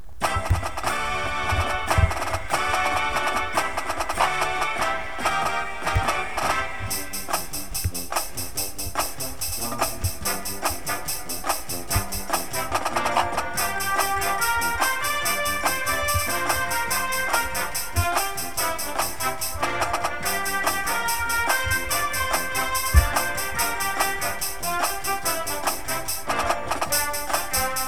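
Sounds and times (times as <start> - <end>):
music: 0.2 - 27.8
snare drum: 0.2 - 27.8.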